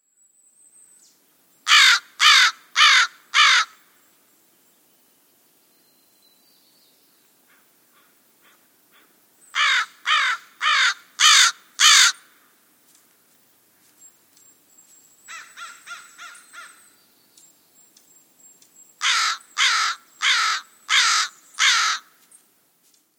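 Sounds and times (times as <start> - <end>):
American crow calling: 1.7 - 3.9, 7.5 - 12.4, 15.3 - 16.9, 19.0 - 22.2.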